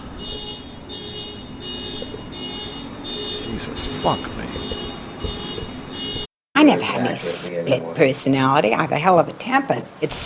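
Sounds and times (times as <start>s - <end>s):
car alarm blaring with a piercing electronic tone: 0.0s - 6.3s
low rumble of street noise: 0.0s - 10.2s
speech: 3.6s - 4.4s, 6.7s - 10.2s.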